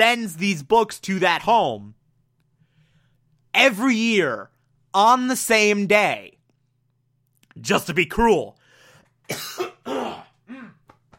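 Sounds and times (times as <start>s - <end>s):
speech: 0.0s - 2.0s, 3.6s - 6.4s, 7.6s - 8.6s, 9.3s - 10.2s
person coughing harshly and dryly: 9.3s - 10.9s
rough throat-clearing: 9.3s - 11.0s.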